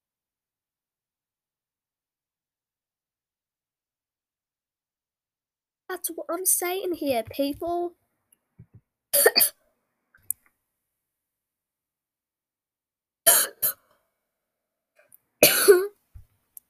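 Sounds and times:
speech: 5.9 - 8.0, 9.1 - 9.6
harsh coughing: 9.2 - 9.6, 13.3 - 13.8, 15.4 - 15.9.

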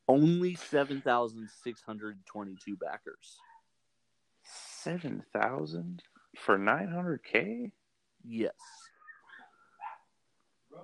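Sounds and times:
speech: 0.1 - 3.5, 4.5 - 8.9
dog barking and yipping: 9.0 - 10.1.

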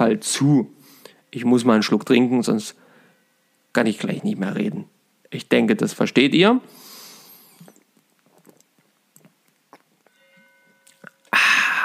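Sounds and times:
speech: 0.0 - 2.8, 3.7 - 6.9
soft clicks and rustling: 7.6 - 10.2
church bells ringing: 10.1 - 11.0.

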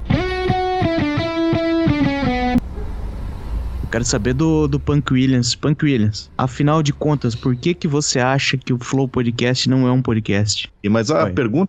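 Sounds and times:
loud distorted guitar-like riff in a podcast intro jingle: 0.0 - 2.6
speech: 3.9 - 11.6.

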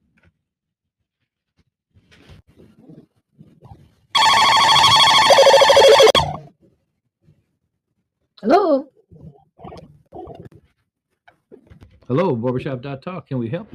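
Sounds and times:
telephone ringing for an incoming call: 4.2 - 6.4
speech: 12.1 - 13.7.

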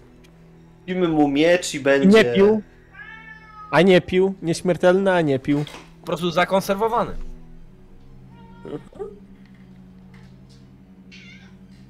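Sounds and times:
speech: 0.8 - 2.7, 3.7 - 7.3, 8.6 - 9.1
cat giving short meows: 2.9 - 3.8, 8.2 - 9.2, 11.1 - 11.8.

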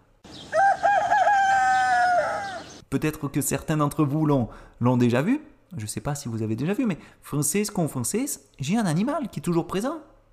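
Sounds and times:
rooster crowing: 0.3 - 2.8
speech: 2.9 - 10.1.

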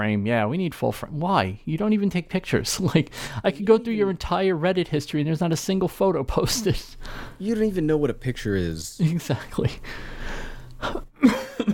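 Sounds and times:
speech: 0.0 - 11.0
person coughing throatily: 6.5 - 7.0.

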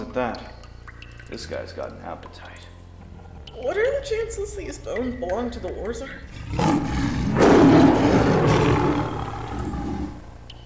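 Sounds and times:
speech: 0.2 - 0.6, 1.3 - 2.7, 3.6 - 7.0
deep loud monster roar: 6.4 - 10.2.

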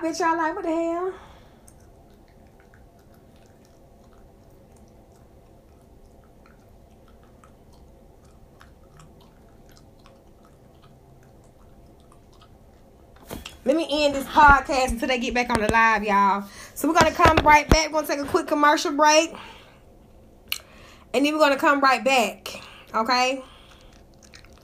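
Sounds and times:
speech: 0.0 - 1.3, 13.7 - 19.6, 21.1 - 23.5
wet chewing of gum with moist clicks and smacks: 1.4 - 13.6, 22.5 - 24.6.

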